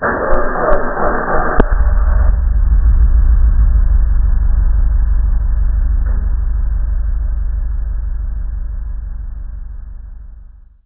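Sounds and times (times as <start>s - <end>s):
car engine starting successfully: 0.0s - 10.8s.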